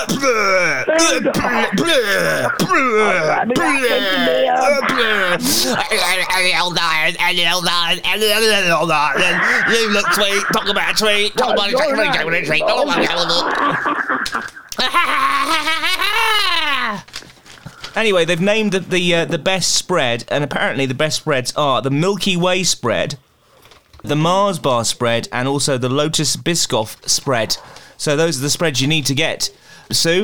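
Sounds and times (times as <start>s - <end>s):
person imitating heavy breathing with huffs and groaning gasps: 0.0s - 5.9s, 9.2s - 9.8s
laughter: 0.0s - 6.3s, 8.0s - 17.2s
speech: 0.0s - 17.1s, 18.0s - 23.2s, 24.0s - 30.2s.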